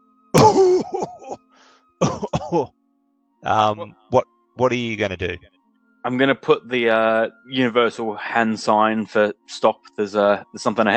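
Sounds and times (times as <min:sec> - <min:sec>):
voice imitating a rough hacking cough from underneath a bridge: 0:00.4 - 0:01.4, 0:02.0 - 0:02.7
speech: 0:02.0 - 0:02.8, 0:03.4 - 0:10.9.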